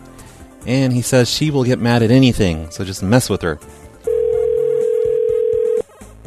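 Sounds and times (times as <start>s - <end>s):
speech: 0.6s - 3.8s
ringback tone of an outgoing unanswered phone call: 4.1s - 5.8s.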